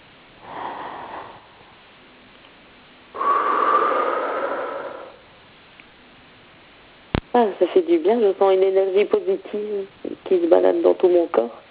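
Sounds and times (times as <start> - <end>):
deep breathing during a guided emotional exercise: 0.4 - 2.0, 3.1 - 5.4
speech: 7.4 - 11.6.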